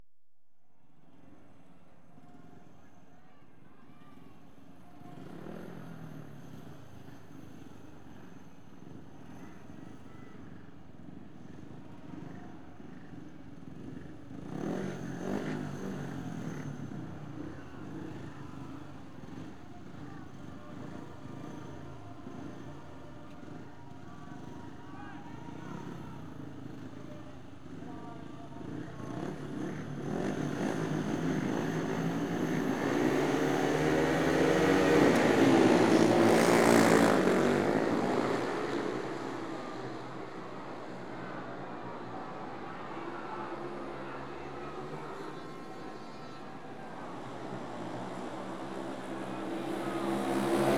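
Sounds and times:
motorbikes racing: 0:11.0 - 0:50.7.

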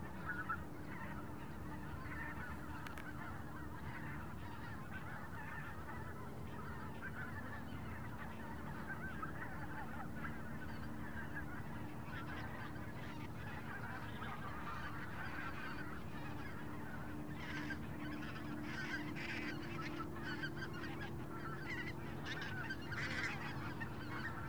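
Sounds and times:
big flock of geese passing overhead in an autumn open field in Wendland: 0:00.1 - 0:24.4.

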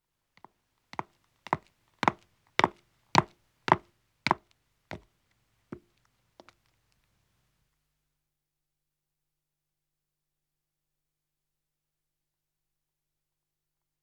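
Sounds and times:
footsteps descending stone stairs with echo: 0:00.4 - 0:05.1.

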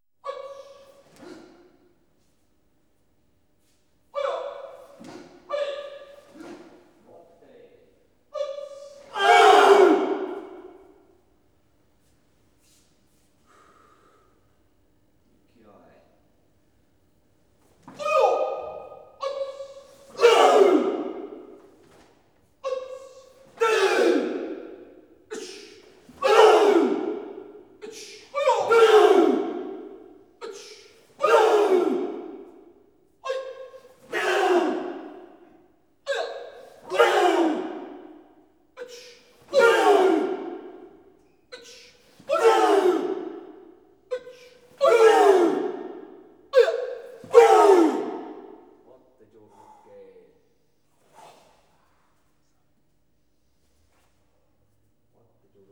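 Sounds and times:
karate class approaching: 0:00.2 - 0:02.6, 0:03.7 - 0:11.3, 0:17.5 - 0:49.9.

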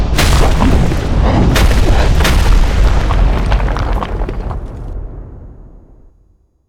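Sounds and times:
rocks falling from the sky: 0:00.1 - 0:04.9.

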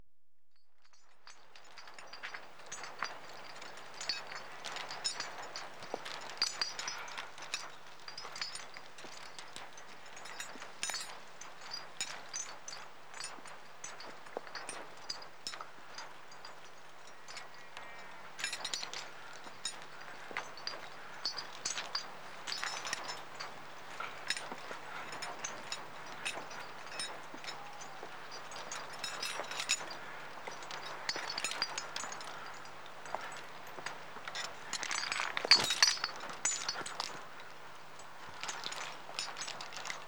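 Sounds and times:
equipment chinking while walking: 0:00.9 - 0:40.0.

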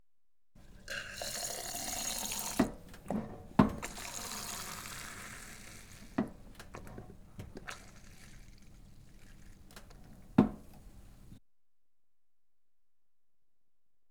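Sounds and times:
pint of beer being pulled: 0:00.6 - 0:11.4.

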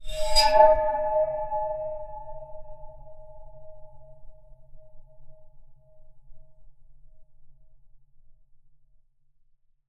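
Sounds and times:
waterphone bowed short recorded with contact mic: 0:00.0 - 0:03.6.

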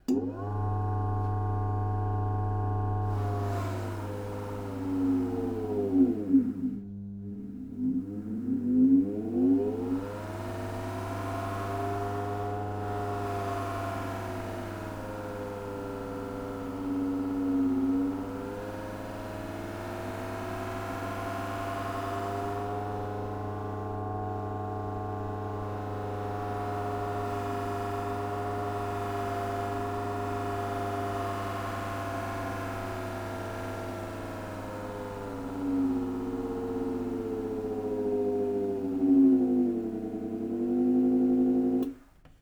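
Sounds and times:
shoe cleaner machine switching on, running and off: 0:00.0 - 0:42.0.

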